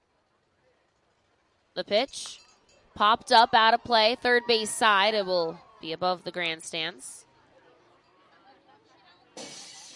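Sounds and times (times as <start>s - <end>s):
low murmur: 0.0s - 9.9s
speech: 1.8s - 2.4s, 3.0s - 7.3s
glass window shattering: 9.4s - 9.9s.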